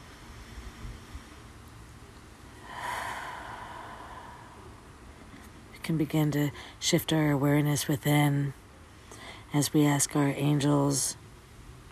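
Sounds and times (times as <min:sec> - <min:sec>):
deep relaxing breath: 0:02.6 - 0:04.9
speech: 0:05.9 - 0:08.6, 0:09.5 - 0:11.2.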